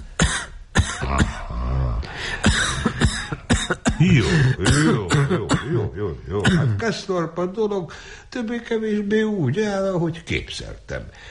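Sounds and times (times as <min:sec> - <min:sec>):
person coughing: 0:00.2 - 0:01.6, 0:02.2 - 0:06.8
harsh throat clearing: 0:00.2 - 0:01.8, 0:02.4 - 0:06.8
speech: 0:04.0 - 0:11.2.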